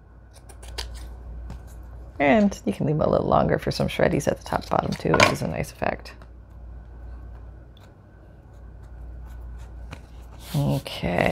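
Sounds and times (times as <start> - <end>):
scissors trimming paper for a junk journal: 0.3 - 1.7
speech: 2.2 - 6.2, 10.7 - 11.3.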